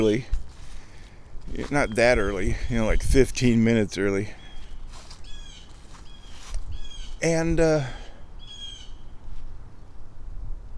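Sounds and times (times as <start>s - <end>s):
speech: 0.0s - 0.4s, 1.5s - 4.4s, 7.2s - 8.0s
bird squawking: 4.4s - 7.2s, 8.4s - 9.0s.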